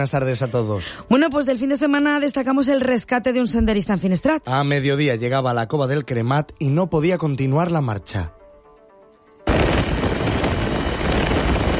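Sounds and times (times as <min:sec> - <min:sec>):
speech: 0:00.0 - 0:08.4
rescue helicopter rotor and engine roaring with thudding chop: 0:09.5 - 0:11.7.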